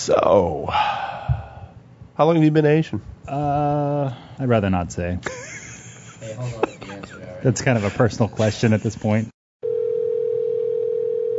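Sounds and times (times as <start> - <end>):
speech: 0.0 - 1.0, 2.2 - 5.5, 6.2 - 9.4
laughter: 5.2 - 9.2
steady telephone tone of an incoming call: 9.6 - 11.3.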